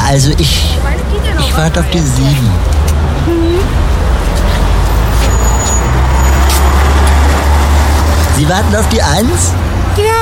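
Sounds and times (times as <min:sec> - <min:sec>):
bus engine drone at a stop: 0:00.0 - 0:10.2
speech: 0:00.1 - 0:04.4, 0:08.4 - 0:10.2
bus brake squeal: 0:04.4 - 0:08.4.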